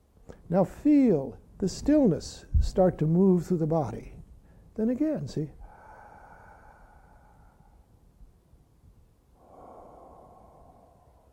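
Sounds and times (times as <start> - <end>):
speech: 0.5 - 4.2, 4.8 - 5.6
slow deep relaxed breathing: 5.6 - 8.4, 9.3 - 11.3.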